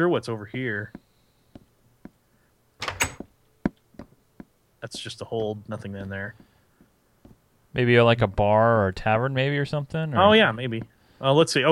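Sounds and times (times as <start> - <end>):
speech: 0.0 - 1.0, 4.8 - 6.5, 7.7 - 11.7
video game door closing: 2.8 - 3.3.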